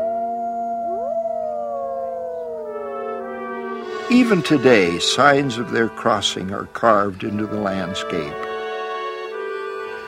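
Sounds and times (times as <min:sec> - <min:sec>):
chorus of wolves howling together on a dusty sage-speckled prairie: 0:00.0 - 0:05.0
speech: 0:04.1 - 0:08.4.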